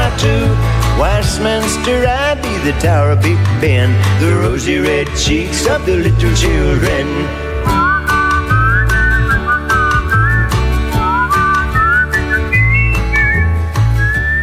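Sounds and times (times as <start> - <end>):
speech: 1.0 - 7.8
band accompaniment with bass and percussion: 1.2 - 13.9
singer whistling a melodic tune: 7.6 - 14.4.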